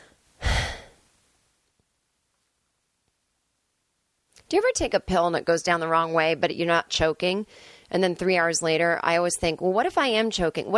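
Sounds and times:
wheezing breath: 0.0s - 1.0s, 7.5s - 7.9s
speech: 4.5s - 10.7s.

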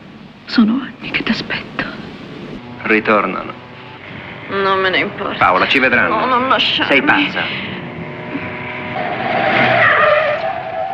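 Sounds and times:
speech: 0.5s - 1.7s, 2.9s - 3.6s, 4.5s - 7.8s
car engine: 1.3s - 10.9s
sports car tires skidding while swerving: 2.6s - 10.9s.

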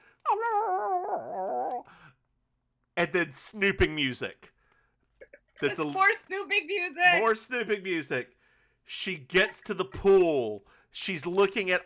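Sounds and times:
dog howling: 0.3s - 1.8s
speech: 0.3s - 2.0s, 3.0s - 4.5s, 5.6s - 11.8s.

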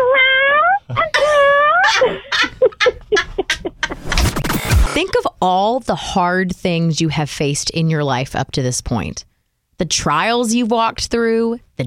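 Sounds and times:
cat meowing with drawn-out rising meows: 0.0s - 1.9s
bright laughter: 0.9s - 4.2s
speech: 5.4s - 11.8s.

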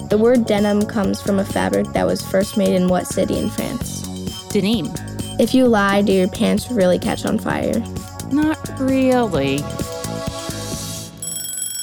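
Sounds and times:
speech: 0.1s - 9.8s
timer alarm ringing during a quiz game: 0.6s - 6.6s, 11.1s - 11.8s.

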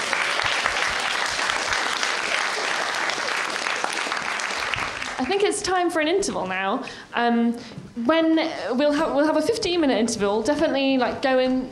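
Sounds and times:
crowd applauding: 0.0s - 5.5s
speech: 5.2s - 11.7s.

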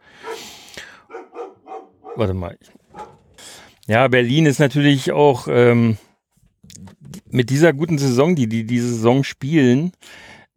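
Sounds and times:
dog barking: 0.2s - 3.3s
speech: 2.2s - 2.8s, 3.9s - 6.1s, 7.3s - 10.3s.

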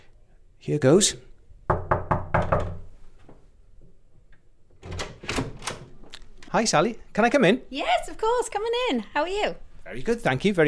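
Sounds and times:
faint room noise: 0.0s - 10.6s
speech: 0.7s - 1.3s, 6.5s - 10.6s
knocking on a wooden hotel bedroom door: 1.7s - 2.9s.

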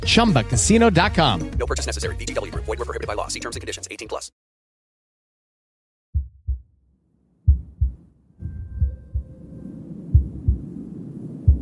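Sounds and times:
speech: 0.0s - 4.4s
deep heartbeat thumping in lub-dub beats: 6.1s - 6.7s, 7.5s - 9.4s, 10.1s - 10.7s, 11.4s - 11.6s
rumbling background: 7.5s - 11.6s.

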